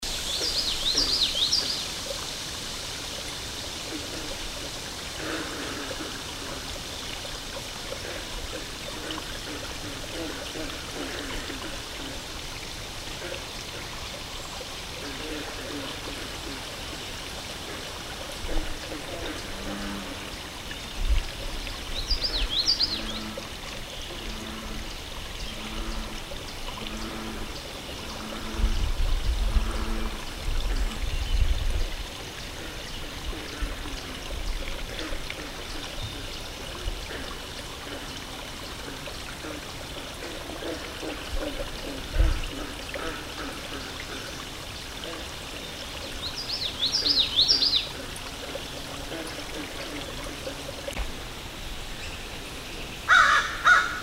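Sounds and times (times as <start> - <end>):
frogs croaking: 0.0 - 54.0
water: 0.0 - 54.0.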